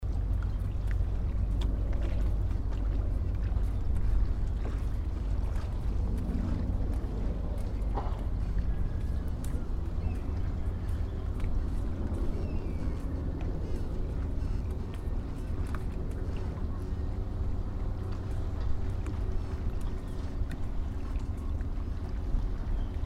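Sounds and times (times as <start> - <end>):
fishing port ambience in Nishiura: 0.0 - 23.0.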